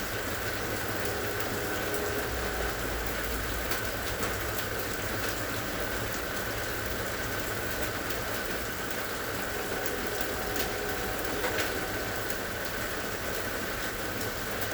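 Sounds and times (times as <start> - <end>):
passing train rumbling: 0.1 - 14.6
faint tonal hum: 0.6 - 3.8, 9.2 - 13.1.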